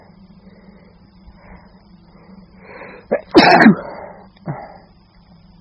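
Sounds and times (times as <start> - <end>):
person sneezing: 3.1 - 4.7.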